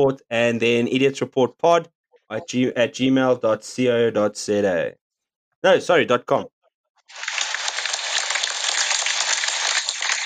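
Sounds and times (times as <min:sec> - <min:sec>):
speech: 0:00.0 - 0:05.0, 0:05.6 - 0:06.5
crowd clapping: 0:07.1 - 0:10.2.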